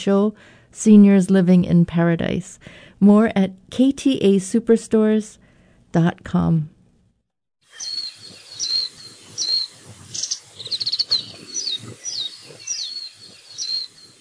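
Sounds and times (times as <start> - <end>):
speech: 0.0 - 6.7
warbling white-eye chirping in Hawaii: 7.7 - 14.2.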